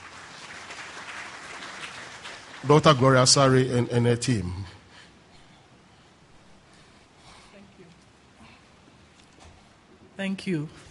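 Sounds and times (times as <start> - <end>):
audience applause welcoming a team of discussion leaders: 0.0 - 3.8
speech: 2.6 - 4.8, 10.3 - 10.8.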